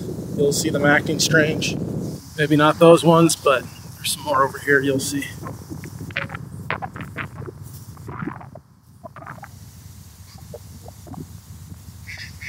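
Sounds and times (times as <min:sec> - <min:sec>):
steady outdoor noise: 0:00.0 - 0:12.4
speech: 0:00.4 - 0:05.8
duck quacking in raspy bursts: 0:06.0 - 0:07.5, 0:08.1 - 0:09.5
faint higher bird calls: 0:12.1 - 0:12.4.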